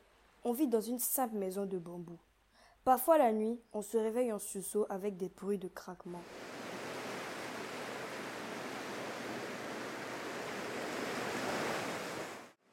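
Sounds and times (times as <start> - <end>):
speech: 0.4 - 6.5
sea surf rushing against sandbanks beside a fishing village as the tide rises: 6.2 - 12.6.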